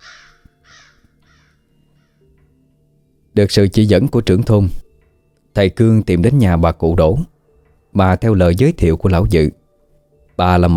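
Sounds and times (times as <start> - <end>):
flock of black crows cawing: 0.0 - 2.3
speech: 3.4 - 4.8, 5.6 - 7.3, 7.9 - 9.6, 10.4 - 10.7.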